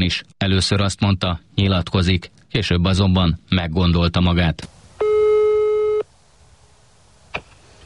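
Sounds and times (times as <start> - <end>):
speech: 0.0 - 4.8
electronic telephone ringing tone: 5.0 - 6.1.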